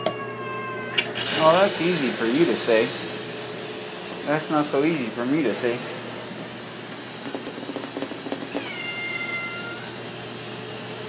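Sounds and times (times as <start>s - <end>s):
steady low hum: 0.0s - 11.0s
speech: 1.4s - 3.1s, 4.2s - 5.9s
soft tapping: 7.2s - 8.7s
cat meowing: 8.6s - 9.9s.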